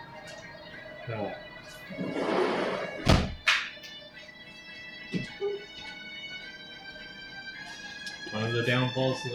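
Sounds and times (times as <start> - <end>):
speech: 1.1 - 2.2, 8.4 - 9.3
door pushed shut with a solid thunk: 3.0 - 3.4
door knocking as it settles into the frame: 3.0 - 3.5.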